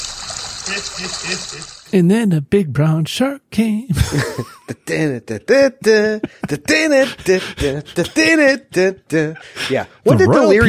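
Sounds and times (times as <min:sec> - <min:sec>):
water bubbling in a whirlpool bath: 0:00.0 - 0:01.9
laughter: 0:00.7 - 0:01.8, 0:04.0 - 0:05.2, 0:06.0 - 0:08.4
speech: 0:00.7 - 0:10.6.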